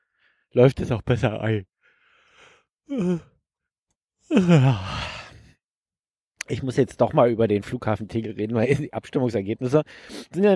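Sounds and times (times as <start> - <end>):
speech: 0.5 - 1.7, 2.9 - 3.3, 4.3 - 5.0, 6.5 - 10.5
person yawning: 2.9 - 3.4, 4.3 - 5.5.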